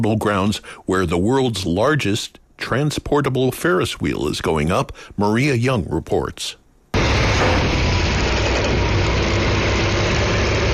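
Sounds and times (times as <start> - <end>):
speech: 0.0 - 6.6
heavy diesel engines of 18-wheeler trucks idling: 7.0 - 10.7.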